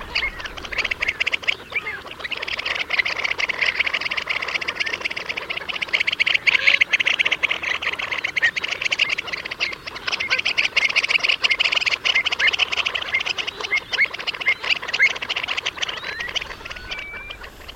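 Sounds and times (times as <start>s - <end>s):
flock of wading birds calling: 0.0s - 17.7s.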